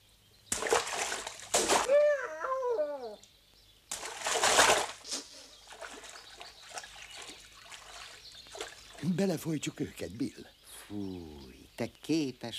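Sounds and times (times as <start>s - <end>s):
lukewarm water splashing: 0.5s - 1.9s, 3.9s - 9.8s
wavering high cry: 1.8s - 3.2s
speech: 9.2s - 12.5s.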